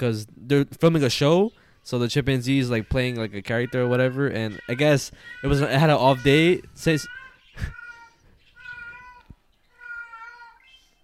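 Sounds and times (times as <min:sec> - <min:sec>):
speech: 0:00.0 - 0:07.8
cat in heat yowling: 0:02.9 - 0:11.0.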